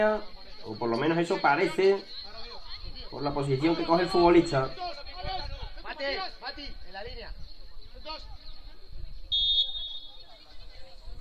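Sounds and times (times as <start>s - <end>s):
speech: 0.0s - 2.2s, 3.1s - 8.5s
crowd murmur: 0.0s - 11.1s
referee's whistle blast: 9.3s - 10.3s.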